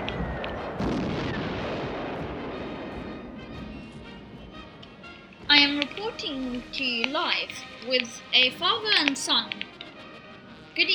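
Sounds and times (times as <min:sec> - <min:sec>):
bombs exploding during a wartime air raid on London: 0:00.0 - 0:06.8
speech: 0:05.6 - 0:09.6, 0:10.8 - 0:10.9.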